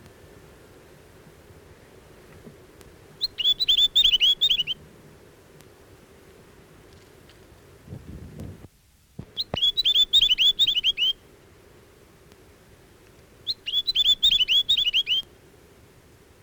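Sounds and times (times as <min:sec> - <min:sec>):
Chatham Island tomtit song of sweet dipping whistles: 0:03.2 - 0:04.8, 0:09.4 - 0:11.2, 0:13.5 - 0:15.2.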